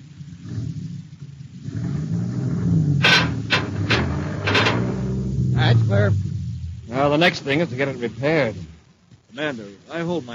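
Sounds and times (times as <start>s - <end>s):
heavy truck engine revving as the truck is driven straight ahead: 1.6s - 9.0s
speech: 7.2s - 10.3s.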